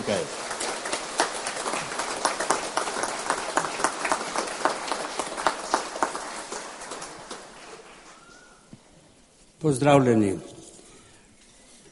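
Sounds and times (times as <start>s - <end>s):
crowd clapping at a Marian shrine in Slovenia: 0.0s - 8.7s
speech: 9.6s - 10.5s.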